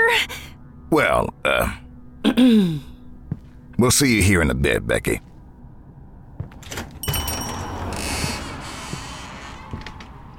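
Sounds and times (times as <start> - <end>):
speech: 0.1 - 2.9, 3.8 - 5.3
door creaking on its hinges: 6.5 - 10.3.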